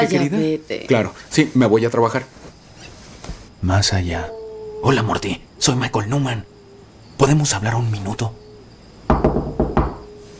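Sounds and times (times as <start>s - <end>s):
speech: 0.0s - 2.5s, 3.6s - 6.5s, 7.2s - 8.4s
knocking on a door: 9.1s - 10.1s.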